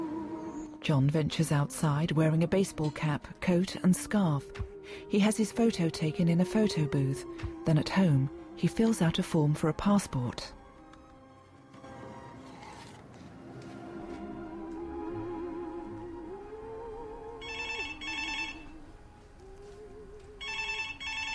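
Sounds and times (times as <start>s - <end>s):
soft melodic music bed: 0.0s - 21.3s
speech: 0.8s - 10.6s
telephone bell ringing at home: 17.4s - 18.7s, 20.4s - 21.3s.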